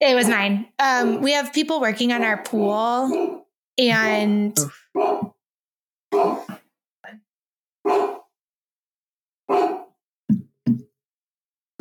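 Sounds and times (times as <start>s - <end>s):
speech: 0.0s - 5.3s, 7.9s - 8.2s
dogs barking at a house: 3.1s - 3.4s, 5.0s - 5.4s, 6.1s - 6.5s, 7.9s - 8.3s, 9.5s - 9.9s.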